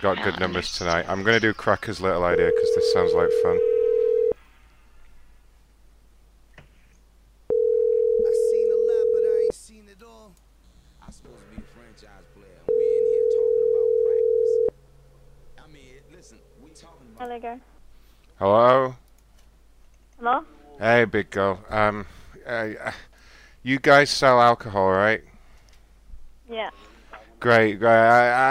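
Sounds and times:
speech: 0:00.0 - 0:03.7, 0:17.3 - 0:17.7, 0:18.4 - 0:19.0, 0:20.2 - 0:25.3, 0:26.5 - 0:26.8, 0:27.4 - 0:28.4
telephone call ringback tone: 0:02.3 - 0:04.4, 0:07.5 - 0:09.5, 0:12.7 - 0:14.7.

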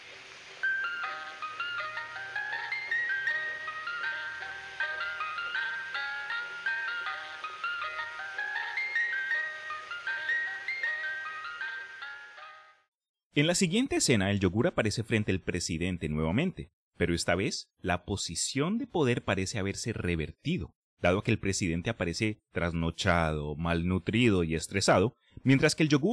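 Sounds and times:
tinny electronic jingle from a popsicle cart: 0:00.6 - 0:12.9
speech: 0:13.4 - 0:26.1.

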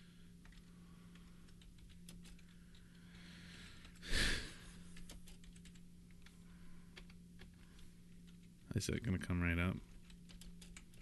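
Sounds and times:
slow typing on a computer keyboard: 0:00.4 - 0:03.1, 0:04.8 - 0:08.6, 0:09.8 - 0:10.9
speech: 0:08.8 - 0:09.9.

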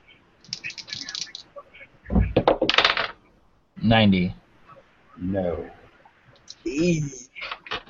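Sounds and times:
dice rolled for a tabletop role-playing game clattering on a table: 0:02.5 - 0:03.2
speech: 0:03.8 - 0:04.4, 0:05.2 - 0:05.8, 0:06.6 - 0:07.5.

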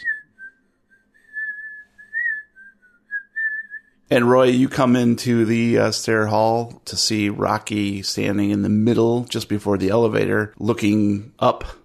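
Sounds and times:
person whistling a wandering melody upstairs: 0:00.0 - 0:03.9
speech: 0:04.1 - 0:11.8.

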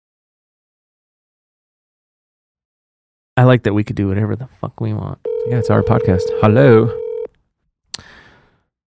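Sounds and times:
speech: 0:03.4 - 0:07.0
electronic phone keypad beep: 0:05.3 - 0:07.3.

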